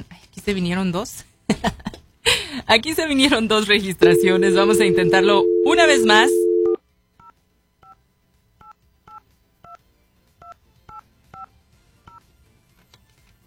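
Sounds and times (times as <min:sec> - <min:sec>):
speech: 0:00.5 - 0:01.9, 0:02.7 - 0:06.4
touch-tone telephone keypad beeps as a number is dialed: 0:04.0 - 0:06.8.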